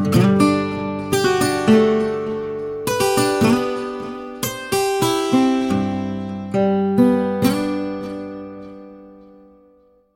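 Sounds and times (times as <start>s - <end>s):
guitar ringtone: 0.0s - 10.1s.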